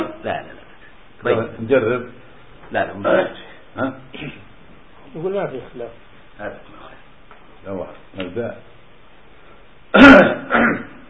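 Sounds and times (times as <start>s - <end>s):
speech: 1.2s - 4.5s, 5.1s - 6.9s, 7.6s - 8.7s, 9.9s - 10.8s
sheikh coughing: 4.1s - 4.5s, 9.9s - 11.0s.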